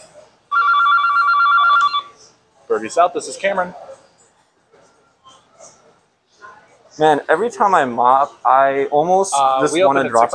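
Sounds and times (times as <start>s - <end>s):
telephone ringing with electronic trill: 0.5s - 2.2s
speech: 2.7s - 3.9s, 7.0s - 10.3s.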